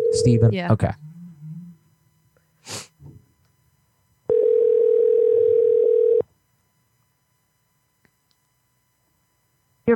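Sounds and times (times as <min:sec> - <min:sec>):
telephone ringing tone as an outgoing call connects: 0:00.0 - 0:00.5, 0:04.3 - 0:06.3
speech: 0:00.2 - 0:01.0.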